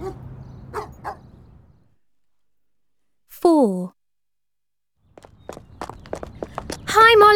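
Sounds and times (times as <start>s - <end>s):
dog barking: 0.0s - 1.3s
speech: 3.6s - 4.0s
shuffling footsteps on a dog walk: 5.2s - 7.3s.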